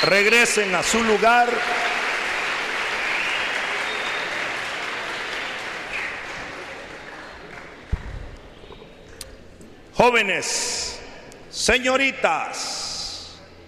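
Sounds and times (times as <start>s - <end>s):
speech: 0.0s - 1.9s, 10.0s - 11.0s, 11.6s - 12.9s
applause for classmates: 0.0s - 7.9s.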